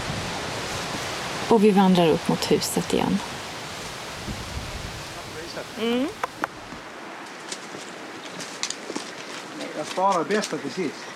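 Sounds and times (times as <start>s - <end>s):
sea waves heard from shore: 0.0s - 8.7s
speech: 1.5s - 3.3s, 5.8s - 6.3s, 9.8s - 11.1s
person murmuring: 5.8s - 6.6s.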